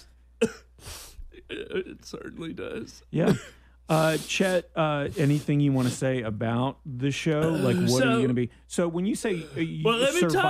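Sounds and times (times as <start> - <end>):
speech: 0.0 - 0.6, 1.5 - 10.4
person coughing: 0.4 - 0.8, 3.2 - 3.7, 7.4 - 8.2.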